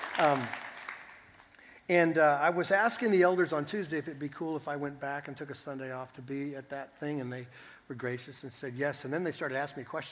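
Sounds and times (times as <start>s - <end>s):
audience clapping for a 60th wedding anniversary: 0.0s - 1.7s
speech: 0.2s - 0.6s, 1.9s - 10.1s.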